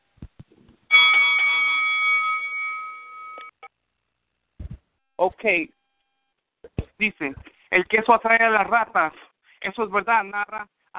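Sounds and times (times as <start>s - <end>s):
bright bell ringing: 0.9s - 3.7s
speech: 5.2s - 5.8s, 7.0s - 10.9s.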